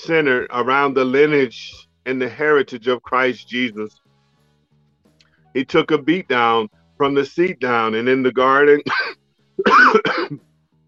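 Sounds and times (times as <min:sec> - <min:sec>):
speech: 0:00.0 - 0:04.0, 0:05.5 - 0:10.4
person coughing during a church sermon: 0:08.8 - 0:10.4.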